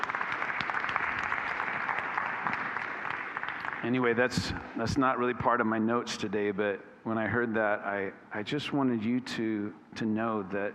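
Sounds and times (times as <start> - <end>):
church congregation applauding a volunteer team: 0.0 - 4.1
speech: 3.8 - 10.7.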